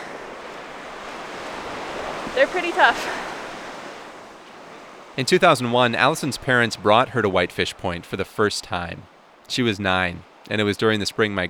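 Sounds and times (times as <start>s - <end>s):
strong wind across an open shoreline: 0.0s - 8.0s
surf washing on the shore: 0.0s - 11.4s
speech: 2.4s - 3.3s, 5.2s - 11.4s.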